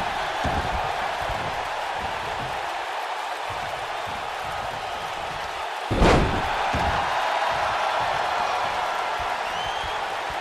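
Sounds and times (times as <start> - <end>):
large crowd roaring at a wrestling match: 0.0 - 10.3
wrestler knocked down onto the mat by a super kick: 5.9 - 7.1.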